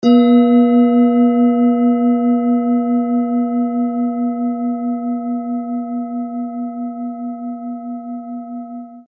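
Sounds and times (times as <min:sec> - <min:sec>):
Tibetan singing bowl in B flat: 0:00.0 - 0:09.0.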